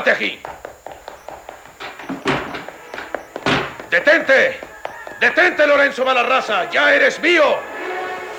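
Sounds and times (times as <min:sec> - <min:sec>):
speech: 0:00.0 - 0:00.7, 0:03.9 - 0:07.7
light wooden taps and thunks: 0:00.4 - 0:05.5
door slamming shut: 0:01.8 - 0:04.0.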